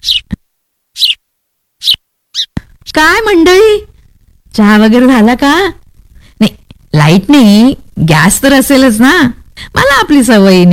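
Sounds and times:
sparrow chirping: 0.0s - 0.3s, 1.0s - 1.2s, 1.8s - 2.6s
speech: 3.0s - 3.9s, 4.6s - 5.8s, 6.4s - 10.7s.

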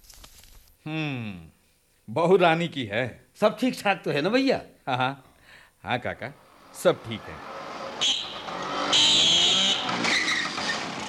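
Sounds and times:
speech: 0.8s - 1.5s, 2.1s - 8.2s
scooter arriving with engine whine: 6.4s - 11.0s.

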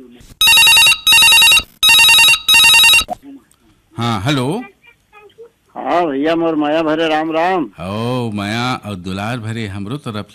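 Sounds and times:
telephone ringing with buzzy trilling rings: 0.4s - 3.1s
speech: 4.0s - 4.7s, 5.8s - 10.3s.

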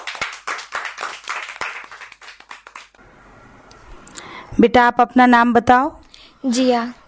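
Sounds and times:
group clapping loudly and rapidly: 0.0s - 3.0s
speech: 4.6s - 7.0s.

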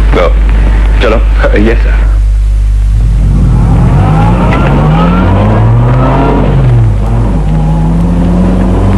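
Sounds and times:
speech: 0.2s - 0.4s, 1.2s - 2.0s
car engine revving as it pulls away from a traffic light: 2.9s - 8.9s.

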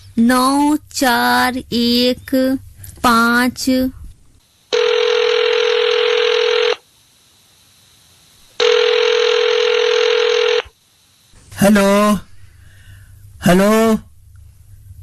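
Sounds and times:
speech: 0.2s - 4.0s, 11.6s - 12.3s, 13.4s - 14.1s
telephone ringing: 4.7s - 6.8s, 8.6s - 10.7s.

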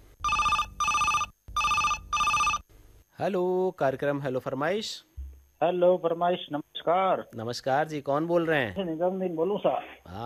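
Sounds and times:
telephone ringing with a bright warbling trill: 0.2s - 2.6s
speech: 3.2s - 10.2s.

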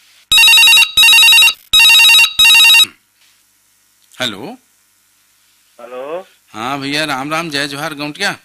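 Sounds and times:
telephone ringing with electronic trills: 0.3s - 2.9s
speech: 4.2s - 4.6s, 5.8s - 8.4s.

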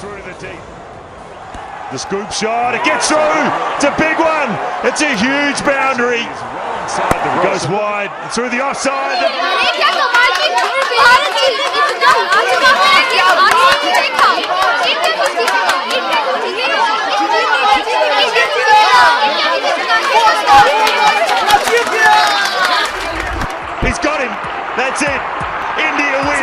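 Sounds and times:
large cricket stadium crowd murmuring and chattering: 0.0s - 26.4s
speech: 0.4s - 0.8s, 1.9s - 22.4s, 23.9s - 26.4s.

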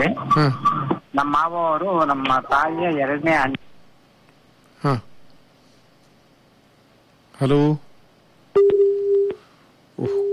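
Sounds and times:
speech: 0.0s - 0.6s, 1.2s - 3.7s, 4.8s - 5.1s, 7.4s - 7.9s, 10.0s - 10.3s
mid-pitched phone line beeps after a call is cut off: 8.6s - 9.4s, 10.0s - 10.3s.

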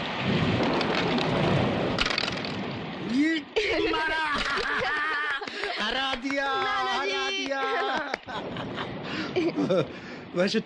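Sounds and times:
deep low rumble of thunder: 0.0s - 3.1s, 8.1s - 10.3s
steady heavy rain hissing and pattering: 0.0s - 10.6s
laughter: 3.6s - 10.0s
speech: 9.7s - 10.6s.

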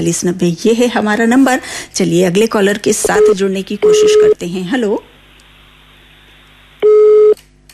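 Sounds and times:
speech: 0.0s - 5.1s
telephone busy tone as a call fails to connect: 3.1s - 4.4s, 6.8s - 7.4s.

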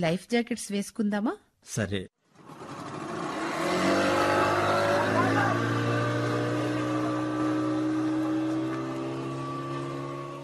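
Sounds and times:
speech: 0.0s - 2.2s
motorboat engine droning during a boat ride on a reservoir: 2.4s - 10.4s.

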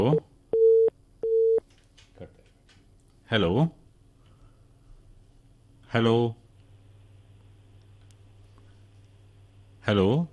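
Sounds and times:
telephone line tone of an incoming call: 0.1s - 1.6s
speech: 3.3s - 3.8s, 5.9s - 6.4s, 9.8s - 10.3s.

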